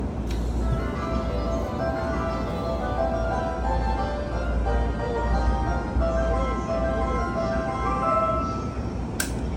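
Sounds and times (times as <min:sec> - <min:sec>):
train sounds: 0:00.0 - 0:09.5.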